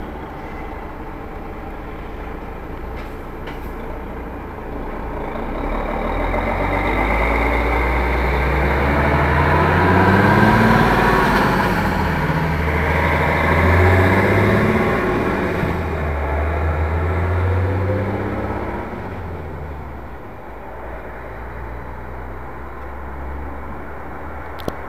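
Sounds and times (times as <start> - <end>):
19-tonne Mercedes Actros truck: 0.0 - 24.8.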